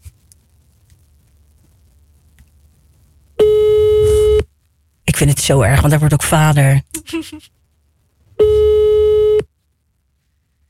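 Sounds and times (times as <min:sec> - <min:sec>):
telephone ringback tone of an outgoing call: 0:03.4 - 0:04.4, 0:08.4 - 0:09.4
speech: 0:05.2 - 0:07.6.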